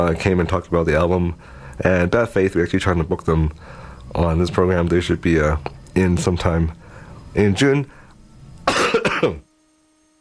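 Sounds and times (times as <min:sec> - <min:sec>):
speech: 0:00.0 - 0:08.0, 0:08.7 - 0:09.5
person coughing harshly: 0:08.7 - 0:09.4.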